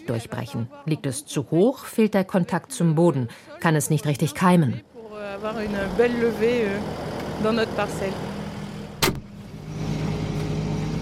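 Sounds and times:
speech: 0.1s - 8.3s
tractor engine chugging while seeding: 5.2s - 10.9s
sharp mechanical clunk: 9.0s - 9.3s.

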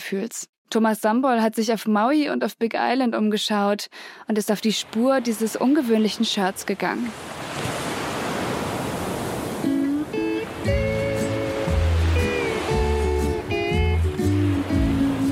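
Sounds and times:
speech: 0.1s - 7.7s
gentle ocean surf rolling in on a bay in Hawaii with light trade wind: 4.8s - 15.2s
music: 9.6s - 15.2s.

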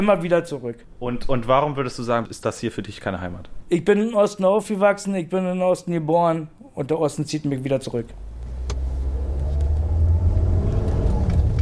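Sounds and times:
speech: 0.0s - 8.2s
car engine rumble driving away at night: 8.1s - 11.6s
road noise: 8.1s - 11.6s.

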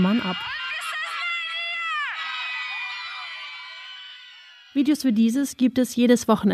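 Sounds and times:
speech: 0.0s - 0.6s, 4.8s - 6.5s
faint crowd noise: 0.0s - 3.9s
woman screaming during violent protest crackdown: 0.0s - 5.1s.

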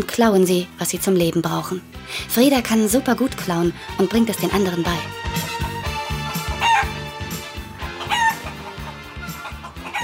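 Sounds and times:
speech: 0.0s - 5.3s
crowded flock of chickens clucking on a farm: 5.3s - 10.0s.

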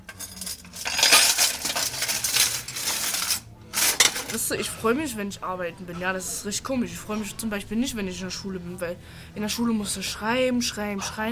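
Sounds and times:
dishes clinking and clattering while being cleaned: 0.0s - 4.5s
speech: 4.3s - 11.3s.

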